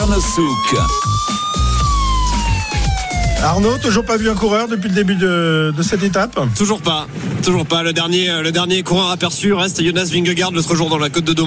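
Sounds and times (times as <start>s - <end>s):
speech: 0.0s - 1.4s, 3.4s - 11.4s
punchy steady bass beat: 0.0s - 6.6s
loud siren-like synth tone gliding downward: 0.0s - 7.1s.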